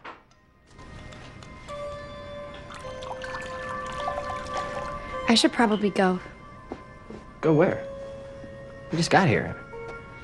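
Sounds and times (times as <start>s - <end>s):
vodka poured into a glass: 2.6s - 5.3s
speech: 5.3s - 6.4s, 7.4s - 7.9s, 8.9s - 9.6s.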